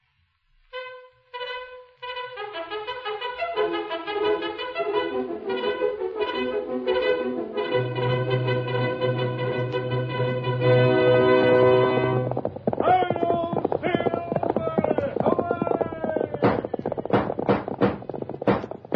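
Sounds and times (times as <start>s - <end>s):
orchestral fanfare: 0.8s - 12.3s
galloping horse hoofbeats: 3.1s - 18.9s.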